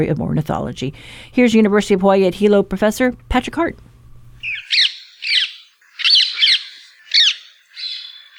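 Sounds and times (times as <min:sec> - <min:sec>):
speech: 0:00.0 - 0:03.9
rose-ringed parakeet giving harsh shrill squawks: 0:04.4 - 0:08.3.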